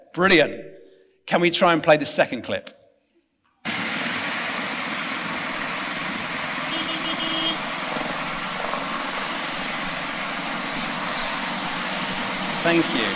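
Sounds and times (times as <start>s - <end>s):
speech: 0.2s - 0.7s, 1.3s - 2.8s, 12.6s - 13.1s
engines and road noise of dense city traffic in Mumbai: 3.6s - 13.1s.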